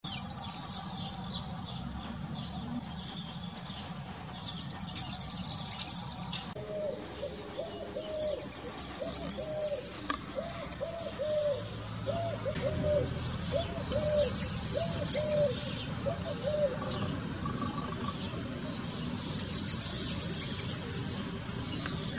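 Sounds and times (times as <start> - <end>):
European serin singing: 0.0 - 22.1.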